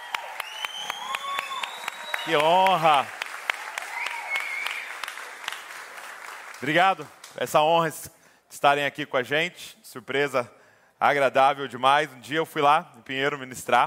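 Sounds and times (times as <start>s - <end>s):
audience applauding: 0.0s - 7.4s
speech: 2.3s - 3.2s, 6.6s - 13.8s.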